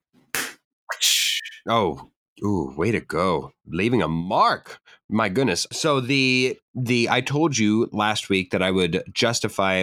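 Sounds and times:
slap sound effect: 0.4 - 1.6
speech: 1.6 - 9.8.

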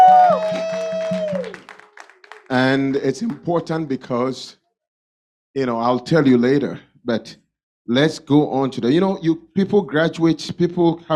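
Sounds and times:
crowd clapping in a quick steady rhythm: 0.0 - 3.8
speech: 2.6 - 4.6, 5.6 - 11.1.

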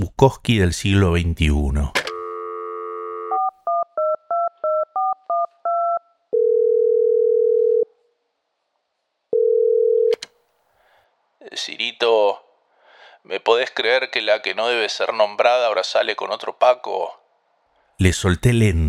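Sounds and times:
speech: 0.0 - 2.0, 11.6 - 12.4, 13.2 - 17.2, 18.0 - 18.8
landline telephone dial tone: 2.0 - 7.9, 9.3 - 10.3
quick telephone keypad beeps dialling out: 3.4 - 6.1.

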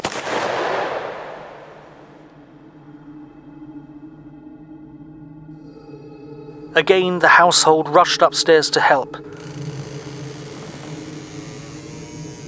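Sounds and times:
gunshot sound effect: 0.0 - 2.1
low tonal drone: 2.2 - 12.4
speech: 6.8 - 9.4.

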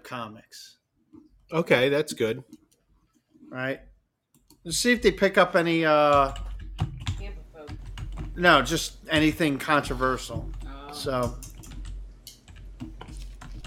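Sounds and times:
low hum: 0.0 - 13.6
speech: 0.1 - 0.8, 1.5 - 2.6, 3.5 - 3.9, 4.6 - 7.0, 8.4 - 11.5
typing on a computer keyboard: 6.1 - 8.4, 10.3 - 13.6.

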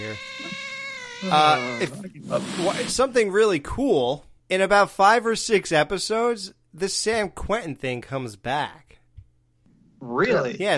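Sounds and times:
speech: 0.0 - 0.6, 1.2 - 8.9, 10.0 - 10.7
cat meowing: 0.0 - 2.1.

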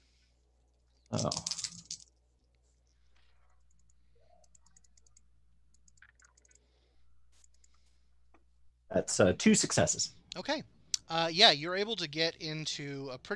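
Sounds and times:
speech: 1.1 - 1.5, 9.0 - 13.3
handful of dice clattering on a hard surface: 1.1 - 2.1.

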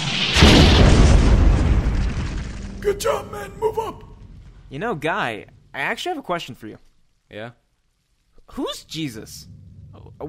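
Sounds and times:
video game grenade explosion in a firefight: 0.0 - 5.7
speech: 3.0 - 4.1, 4.7 - 7.6, 8.5 - 10.2.

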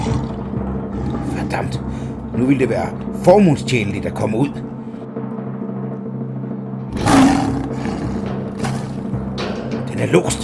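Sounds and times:
lion roaring: 0.0 - 2.4, 6.9 - 9.9
speech: 1.5 - 4.7, 10.0 - 10.4.

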